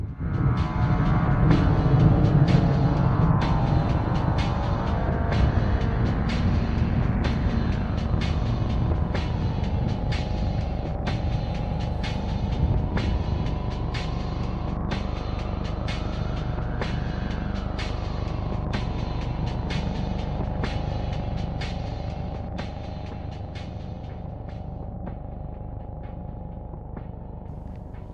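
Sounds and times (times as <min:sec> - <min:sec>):
continuous road noise: 0:00.0 - 0:19.8
engines of two SUVs and two motorbikes rumbling in a convoy: 0:00.0 - 0:28.1.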